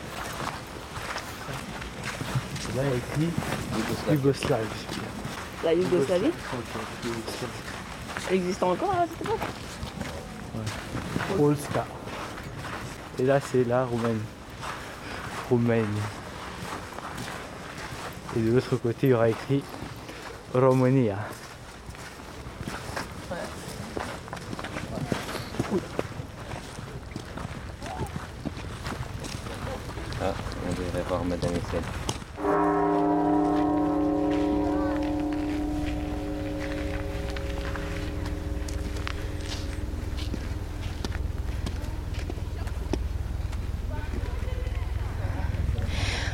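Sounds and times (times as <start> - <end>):
footsteps outdoors: 0.0 - 46.3
outdoor ambience: 0.0 - 46.3
speech: 2.8 - 7.7, 8.3 - 9.7, 11.3 - 12.0, 13.2 - 14.4, 15.5 - 16.2, 18.3 - 19.8, 20.5 - 21.4, 31.2 - 32.1
single loud bell strike with rich sustained tone: 32.4 - 44.0.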